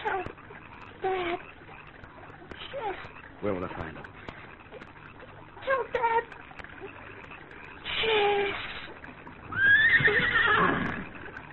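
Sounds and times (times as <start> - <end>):
horse hooves clopping and shuffling: 0.0 - 11.5
speech: 3.4 - 4.2
horse neighing: 9.5 - 11.4.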